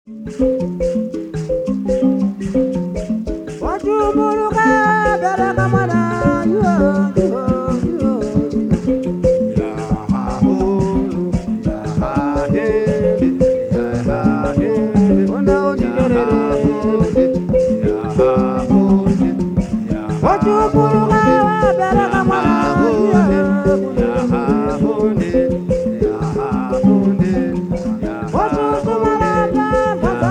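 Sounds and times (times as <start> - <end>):
mbira: 0.1 - 30.2.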